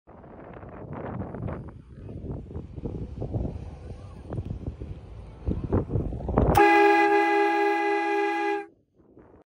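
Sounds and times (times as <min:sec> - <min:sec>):
Italian double horn: 0:06.5 - 0:08.7.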